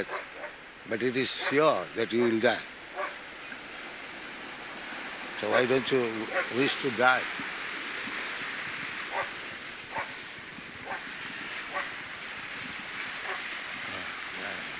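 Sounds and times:
steady wash of wind or water noise: 0.0s - 14.7s
dog barking: 0.1s - 0.5s, 1.4s - 1.6s, 3.0s - 3.2s, 6.3s - 6.5s, 9.1s - 9.3s, 9.9s - 10.1s
speech: 0.9s - 2.7s, 5.4s - 7.5s.

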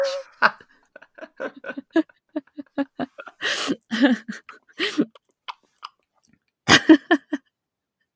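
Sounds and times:
laughter: 0.2s - 4.6s
person imitating chewing a sandwich with their mouth: 5.0s - 6.4s.

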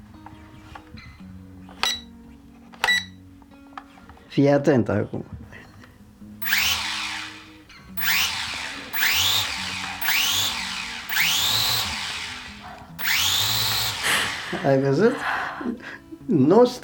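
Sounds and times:
speech: 4.4s - 5.4s, 14.6s - 16.8s
small toy drone propellers whirring: 6.4s - 15.2s.

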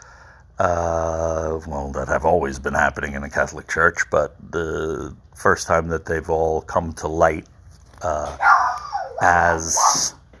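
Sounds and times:
speech: 0.6s - 0.9s, 1.6s - 8.5s, 9.2s - 10.2s
dog barking and yipping: 8.4s - 10.2s.

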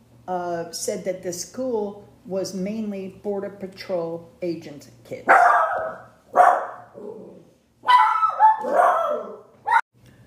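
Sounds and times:
speech: 0.3s - 6.0s
dog barking at someone coming to the door: 5.3s - 7.0s, 7.8s - 9.8s
dog whining with tonal yelps and whimpers: 5.4s - 9.8s.

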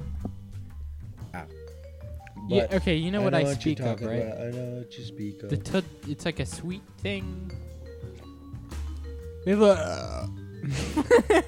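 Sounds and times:
person burping: 1.2s - 1.6s, 9.7s - 10.4s
speech: 2.5s - 7.7s, 9.4s - 11.4s
laughter: 10.6s - 11.4s.

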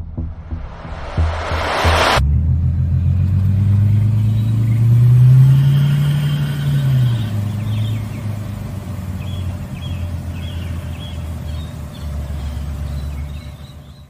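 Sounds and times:
brief burst of noise: 0.2s - 2.2s
Bentley Continental convertible engine revving and idling: 1.6s - 14.0s.

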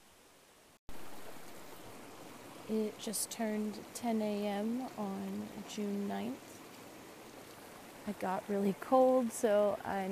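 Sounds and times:
flowing river water: 0.9s - 10.1s
speech: 2.7s - 6.6s, 8.0s - 10.1s.

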